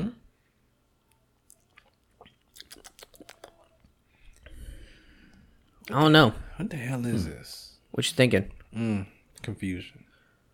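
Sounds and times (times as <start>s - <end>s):
person sipping a drink: 1.1s - 4.7s
swallowing: 1.5s - 4.6s
speech: 5.9s - 10.1s.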